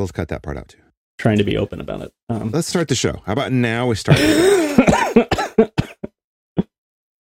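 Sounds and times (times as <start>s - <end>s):
speech: 0.0s - 4.9s
person coughing: 4.2s - 6.7s.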